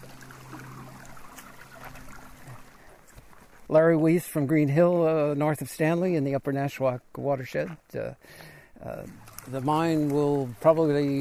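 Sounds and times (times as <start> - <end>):
stream water rushing and gurgling in the Upper Nashwaak watershed: 0.0 - 3.6, 8.8 - 11.1
speech: 3.7 - 11.1.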